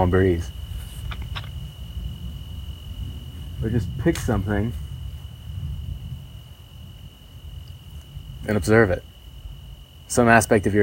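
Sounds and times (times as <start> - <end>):
speech: 0.0 - 0.6, 3.6 - 4.8, 8.5 - 9.1, 10.1 - 10.8
low rumble outdoors: 0.0 - 10.8
steady thin cricket trill outdoors: 0.0 - 10.8
brief rustling clicks: 1.0 - 1.6.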